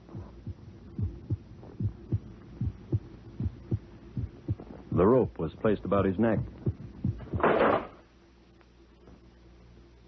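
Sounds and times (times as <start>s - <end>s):
heartbeat pounding: 0.0s - 5.4s, 6.0s - 7.5s
soft hum: 0.0s - 10.0s
speech: 5.0s - 6.6s.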